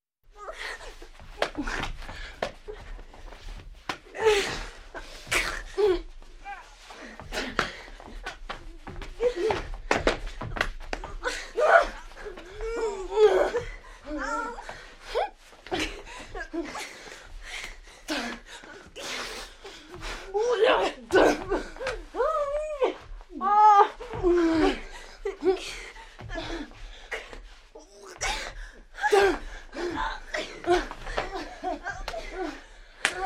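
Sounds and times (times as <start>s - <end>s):
people fighting: 0.4s - 33.2s.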